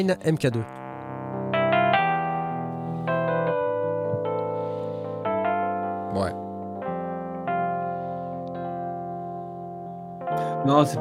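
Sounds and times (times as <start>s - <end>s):
speech: 0.0s - 0.8s, 10.6s - 10.9s
bright synthetic Italo piano preset chords played on a keyboard: 0.0s - 10.9s.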